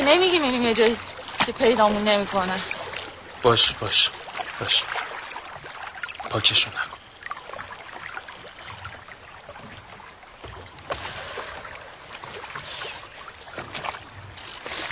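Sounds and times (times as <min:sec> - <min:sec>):
small rowboat splashing through water: 0:00.0 - 0:14.9
speech: 0:00.1 - 0:02.8, 0:03.4 - 0:05.1, 0:06.3 - 0:07.0.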